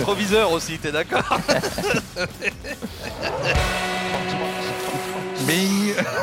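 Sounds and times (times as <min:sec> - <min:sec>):
speech: 0:00.0 - 0:03.9, 0:05.4 - 0:06.2
laughter: 0:01.0 - 0:06.2
podcast jingle built from racing car sounds: 0:02.9 - 0:06.2
loud steady racing car engine drone: 0:03.3 - 0:06.2.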